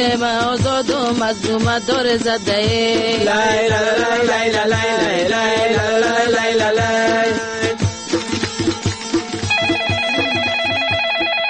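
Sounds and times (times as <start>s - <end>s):
speech: 0.0s - 7.6s
rhythmic beat-driven music: 0.0s - 11.4s
warbling electronic telephone ring: 9.4s - 11.4s.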